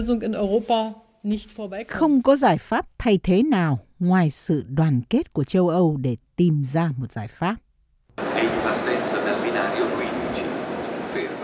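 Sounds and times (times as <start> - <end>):
speech: 0.0 - 7.6
crowd chatter and hubbub at Milan train station in Italy: 8.2 - 11.4
low rail rumble at Milan train station in Italy: 8.2 - 11.4.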